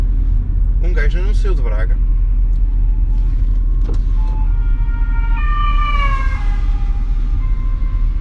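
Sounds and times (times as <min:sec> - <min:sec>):
steady road traffic rumble: 0:00.0 - 0:08.1
speech: 0:01.1 - 0:02.1
ambulance siren passing: 0:02.7 - 0:08.1.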